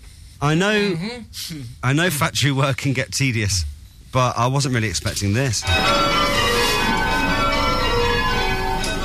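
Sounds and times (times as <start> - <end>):
speech: 0.4 - 6.2
large bells ringing at a bell foundry: 5.6 - 9.0.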